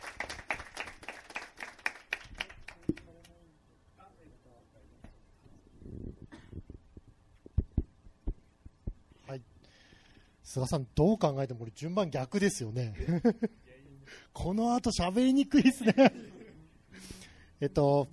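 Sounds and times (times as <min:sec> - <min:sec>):
audience applause welcoming a guest speaker: 0:00.0 - 0:02.8
speech: 0:10.6 - 0:13.6, 0:14.4 - 0:16.3, 0:17.6 - 0:18.1
laughter: 0:13.0 - 0:13.6, 0:15.5 - 0:16.7.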